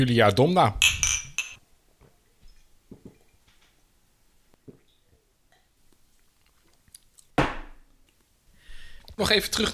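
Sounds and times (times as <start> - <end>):
speech: 0.0 - 1.0, 9.2 - 9.7
beer glasses clinking in a toast: 0.8 - 1.6.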